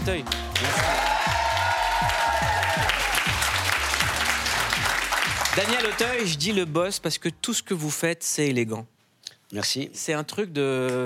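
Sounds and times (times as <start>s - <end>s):
speech: 0.0s - 1.2s, 5.6s - 11.0s
rhythmic thumping music beat: 0.0s - 7.0s
television studio audience applause: 0.2s - 6.4s
person whooping: 0.6s - 3.2s.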